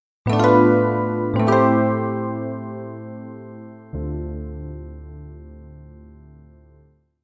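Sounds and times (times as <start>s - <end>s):
holiday piano music: 0.2s - 7.0s.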